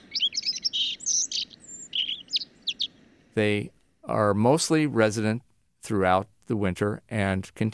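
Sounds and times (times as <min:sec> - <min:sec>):
songbird singing in fall: 0:00.0 - 0:05.4
speech: 0:03.4 - 0:07.7.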